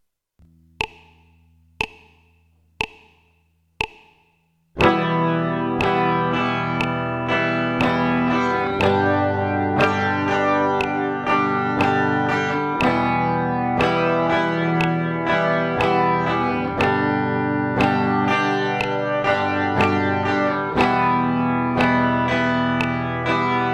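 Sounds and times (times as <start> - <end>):
guitar strumming: 4.8 - 23.7.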